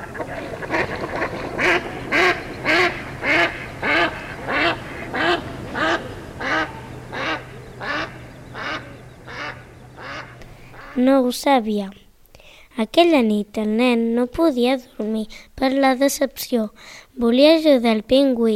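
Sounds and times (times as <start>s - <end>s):
duck quacking: 0.0s - 11.0s
low hum: 0.0s - 18.5s
speech: 11.0s - 12.0s, 12.8s - 18.5s.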